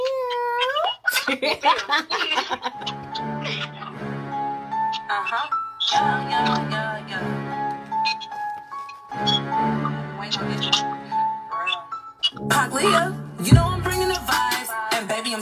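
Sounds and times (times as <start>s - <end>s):
laughter: 0.8s - 4.3s
speech: 1.3s - 3.3s, 5.2s - 7.4s, 12.6s - 14.1s
rap single playing: 4.1s - 8.0s, 9.2s - 15.4s
rap vocals over a pulsing low beat: 5.9s - 7.5s, 11.6s - 15.4s.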